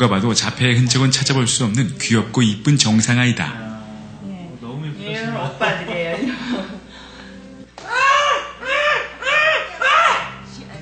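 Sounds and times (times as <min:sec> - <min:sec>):
speech: 0:00.0 - 0:03.7
laughter: 0:05.2 - 0:07.1, 0:07.8 - 0:10.4
girl screaming in distress on a shopping outing: 0:07.8 - 0:10.4.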